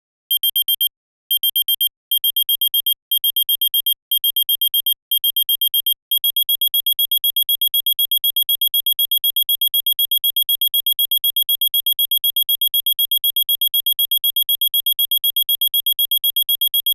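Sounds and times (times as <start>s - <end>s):
alarm: 0.4s - 16.9s.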